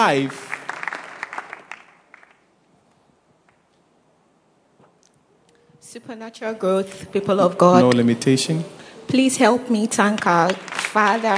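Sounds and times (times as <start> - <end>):
speech: 0.0 - 0.5, 6.0 - 11.3
audience clapping: 0.0 - 2.5, 10.0 - 11.3.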